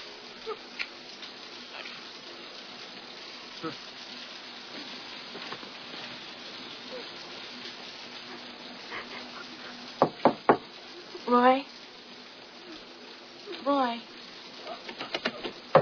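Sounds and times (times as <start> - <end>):
steady low hum: 0.0 - 15.8
sharp knocking on a door: 10.0 - 10.6, 15.1 - 15.8.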